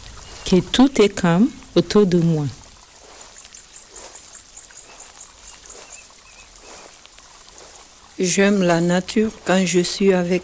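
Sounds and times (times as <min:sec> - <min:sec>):
flowing river water: 0:00.0 - 0:10.4
speech: 0:00.5 - 0:02.6, 0:08.2 - 0:10.4
faint high chirps: 0:03.4 - 0:06.9.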